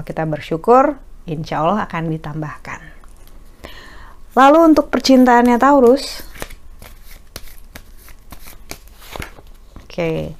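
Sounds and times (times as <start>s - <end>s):
speech: 0.0s - 2.8s, 4.4s - 6.3s, 10.0s - 10.3s
tarot cards being shuffled by hand: 5.0s - 10.1s.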